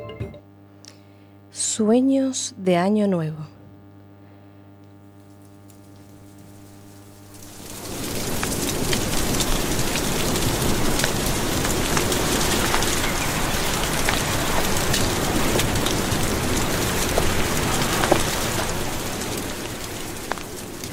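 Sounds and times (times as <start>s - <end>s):
speech: 1.8s - 3.5s
heavy storm rain pouring down: 7.3s - 20.9s.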